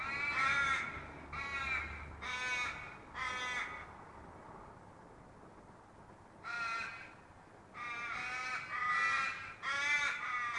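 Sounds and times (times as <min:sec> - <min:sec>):
raven giving long harsh caws: 0:00.0 - 0:04.0, 0:06.4 - 0:10.5.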